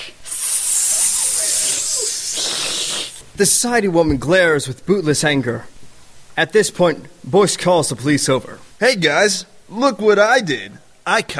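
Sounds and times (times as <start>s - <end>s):
group of former book club ladies hissing angrily: 0.0s - 3.3s
speech: 3.4s - 5.7s, 6.4s - 11.3s.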